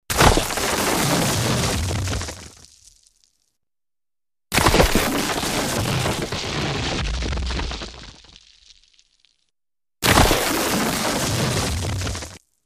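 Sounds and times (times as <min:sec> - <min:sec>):
big rock hitting and sliding: 0:00.1 - 0:02.8, 0:04.5 - 0:08.9, 0:10.0 - 0:12.4.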